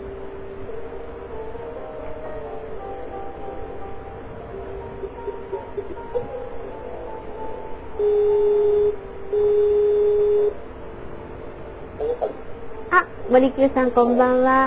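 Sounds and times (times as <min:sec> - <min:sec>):
constant low hum: 0:00.0 - 0:14.6
outgoing call ringing tone of a voice call app: 0:08.0 - 0:10.6
speech: 0:13.4 - 0:14.6.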